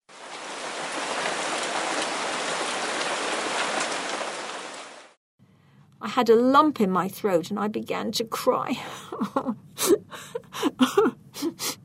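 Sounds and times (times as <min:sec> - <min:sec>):
heavy rain pouring: 0:00.1 - 0:05.2
speech: 0:06.0 - 0:11.7.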